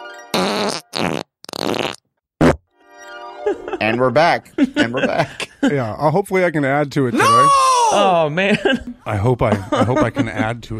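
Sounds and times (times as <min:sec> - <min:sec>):
recorded fart sounds played back: 0:00.3 - 0:02.6
laughter: 0:03.4 - 0:06.0, 0:07.1 - 0:10.7
speech: 0:03.5 - 0:10.7.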